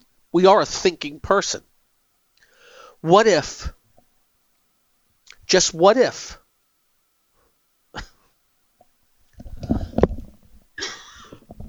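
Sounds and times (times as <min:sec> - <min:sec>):
speech: 0:00.3 - 0:01.7, 0:03.0 - 0:03.8, 0:05.5 - 0:06.4
person coughing: 0:08.0 - 0:08.3, 0:10.8 - 0:11.4.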